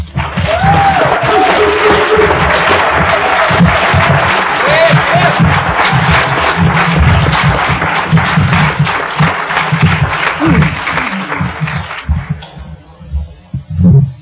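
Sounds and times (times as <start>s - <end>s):
large audience clapping: 0.0s - 12.9s
cheers and whoops: 0.2s - 6.0s
laughter: 0.5s - 12.1s.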